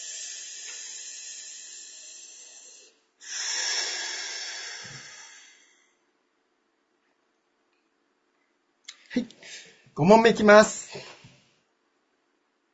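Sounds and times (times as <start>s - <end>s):
deep breathing during a stretching break: 0.0s - 6.0s
speech: 9.2s - 9.4s, 10.0s - 11.1s.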